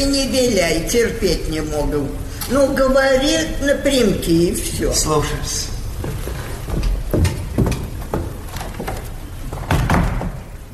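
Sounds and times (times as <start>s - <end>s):
speech: 0.0s - 5.7s
wooden doors being shut with latch clicks: 6.0s - 10.7s
heavy door double slam: 7.2s - 10.6s.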